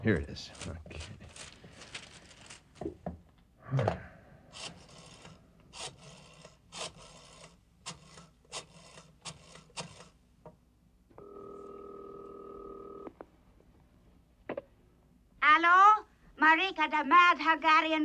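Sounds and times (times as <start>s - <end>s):
speech: 0.0s - 1.5s, 3.7s - 4.1s, 16.4s - 18.0s
steady telephone tone: 11.1s - 13.2s.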